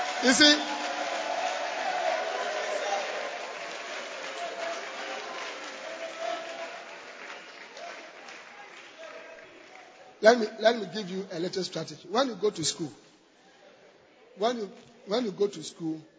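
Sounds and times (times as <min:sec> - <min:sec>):
audience cheering: 0:00.0 - 0:09.9
audience clapping: 0:00.0 - 0:10.5
speech: 0:00.2 - 0:00.7, 0:10.2 - 0:13.0, 0:14.4 - 0:16.1.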